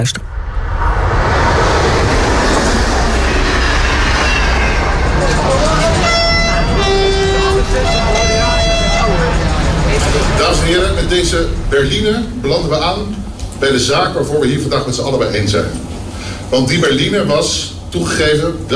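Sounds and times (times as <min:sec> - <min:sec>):
speech: 0:00.0 - 0:00.4, 0:11.1 - 0:15.9, 0:16.5 - 0:18.7
train rumbling while bringing in an old royal carriage: 0:00.0 - 0:18.7
high whistle-like toots: 0:03.6 - 0:09.6
murmur of voices: 0:05.0 - 0:18.7.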